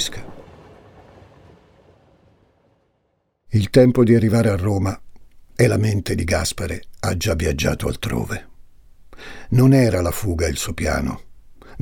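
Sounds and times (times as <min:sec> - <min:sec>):
train rumbling along the rails with faint rhythmic clatter: 0:00.0 - 0:03.0
speech: 0:03.5 - 0:08.5, 0:09.2 - 0:11.8.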